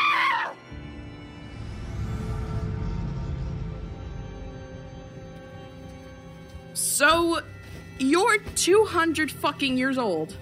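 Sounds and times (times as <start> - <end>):
person screaming: 0.0 - 0.6
low rumbling drone: 0.7 - 6.8
speech: 6.8 - 10.3.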